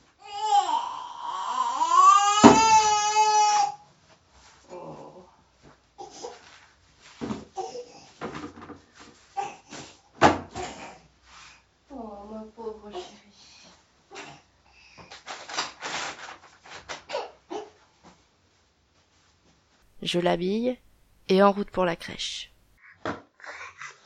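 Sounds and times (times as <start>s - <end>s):
baby wailing loudly: 0.2s - 3.8s
clicks, taps and light clatter of a baby bottle being prepared in a kitchen: 8.2s - 8.9s
speech: 20.1s - 23.2s.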